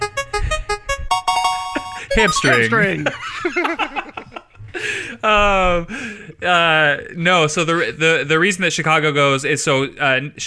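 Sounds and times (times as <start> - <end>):
bright electronic beeps: 1.2 - 2.9
laughter: 1.9 - 4.8
speech: 2.2 - 4.0, 4.8 - 10.4.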